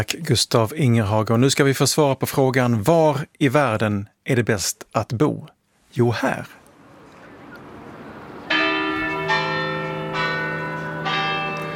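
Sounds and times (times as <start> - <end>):
speech: 0.0 - 6.6
church bells ringing in central Copenhagen Denmark: 8.1 - 11.7.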